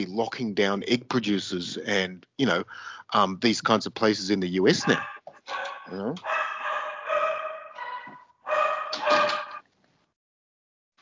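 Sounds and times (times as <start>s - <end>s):
speech: 0.0s - 6.4s
dogs barking and yelping: 4.7s - 9.6s.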